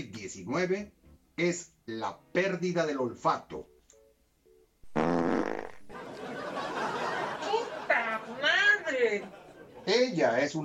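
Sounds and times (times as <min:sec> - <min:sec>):
speech: 0:00.0 - 0:03.7, 0:09.0 - 0:10.6
fart: 0:04.9 - 0:05.9
laughter: 0:05.9 - 0:10.1.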